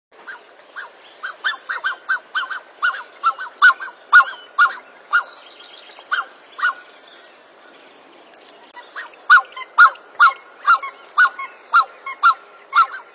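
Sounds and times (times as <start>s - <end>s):
black-necked swan nasal honks: 0.2s - 5.4s, 8.8s - 13.1s.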